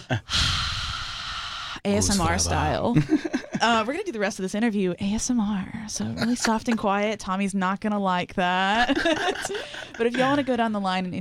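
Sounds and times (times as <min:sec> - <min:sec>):
speech: 0:00.1 - 0:00.4, 0:01.8 - 0:11.1
long loud breathy exhale into a microphone: 0:00.2 - 0:01.8
laughter: 0:02.9 - 0:03.8, 0:08.8 - 0:10.5.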